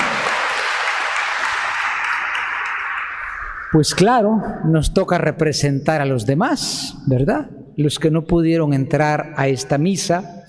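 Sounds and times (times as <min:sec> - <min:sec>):
audience applauding: 0:00.0 - 0:03.6
speech: 0:03.7 - 0:10.4.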